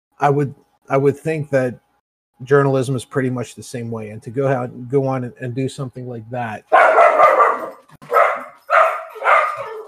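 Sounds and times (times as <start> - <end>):
speech: 0.2 - 1.8, 2.4 - 7.0
dog barking: 6.7 - 9.8.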